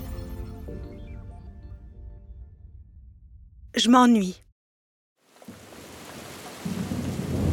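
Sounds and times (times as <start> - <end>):
speech: 3.8 - 4.4
heavy torrential rain pouring: 5.3 - 7.4.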